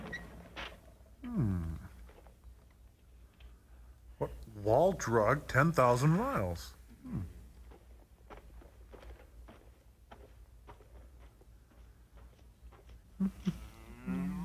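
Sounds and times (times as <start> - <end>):
speech: 4.2 - 7.3
cow mooing: 13.3 - 14.4.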